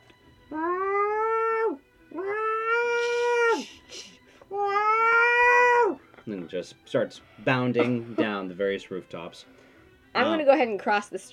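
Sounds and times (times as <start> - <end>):
cat meowing in long drawn-out calls: 0.5 - 3.8, 4.4 - 6.0
speech: 6.4 - 11.3.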